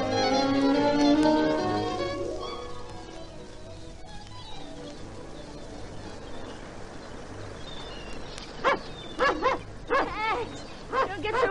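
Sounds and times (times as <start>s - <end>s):
faint hiss: 0.0s - 11.4s
dog barking: 8.6s - 10.2s, 10.9s - 11.4s.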